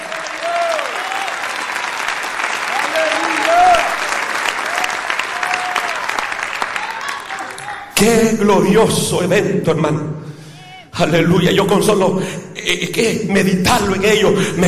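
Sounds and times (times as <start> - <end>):
large audience applauding: 0.0 - 8.0
speech: 8.0 - 10.3, 11.0 - 14.6.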